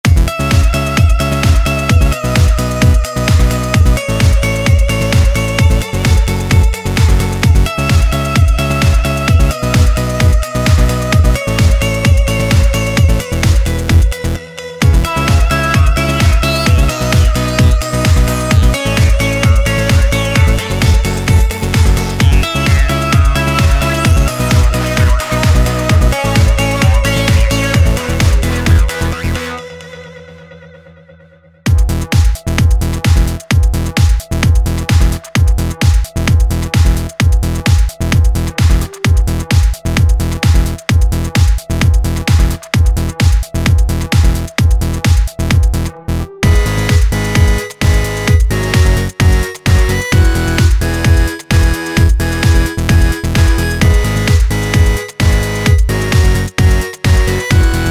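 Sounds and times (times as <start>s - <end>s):
electronic piano: 0.1s - 29.4s, 31.9s - 57.8s.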